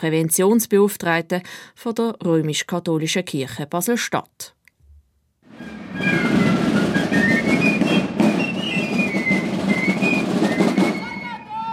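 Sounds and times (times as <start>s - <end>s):
speech: 0.0s - 4.6s
carnival parade drums rumbling in Basel: 5.5s - 11.5s
carnival piccolo fifes playing a high melody in a parade: 5.6s - 11.7s.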